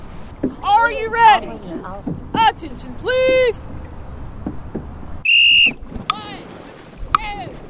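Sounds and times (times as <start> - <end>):
splashing from a dragon boat: 0.0 - 7.6
wind on open water: 0.0 - 7.6
speech: 0.8 - 3.8
long loud whistle blast: 5.2 - 5.8.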